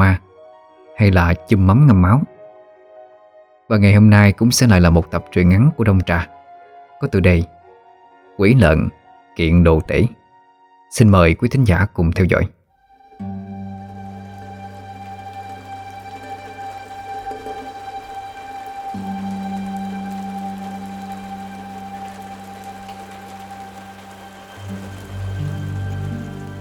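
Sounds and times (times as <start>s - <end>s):
speech: 0.0s - 0.2s, 1.0s - 2.3s, 3.7s - 6.3s, 7.0s - 7.5s, 8.4s - 10.2s, 10.9s - 12.6s
steady rain falling on muddy village ground: 13.2s - 26.6s.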